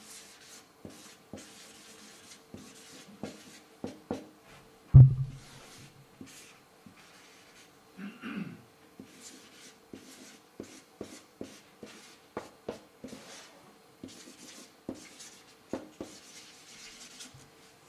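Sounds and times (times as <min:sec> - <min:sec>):
pen or marker scratching across a surface: 0:00.0 - 0:04.2, 0:06.2 - 0:07.7, 0:09.0 - 0:17.3
knock: 0:05.0 - 0:05.4.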